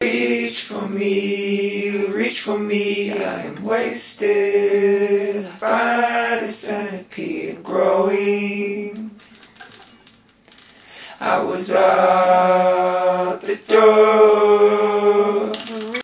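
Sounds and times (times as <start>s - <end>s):
folksy vocal: 0.0s - 9.2s, 11.0s - 16.0s.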